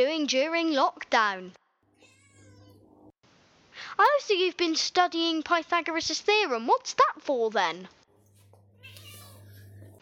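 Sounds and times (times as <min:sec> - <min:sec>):
speech: 0:00.0 - 0:01.6, 0:03.9 - 0:08.0
cat meowing: 0:01.9 - 0:03.1, 0:08.8 - 0:10.0.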